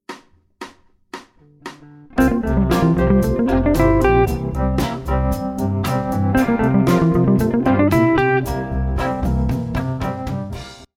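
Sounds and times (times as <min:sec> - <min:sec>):
mixolydian lick: 0:01.4 - 0:10.6.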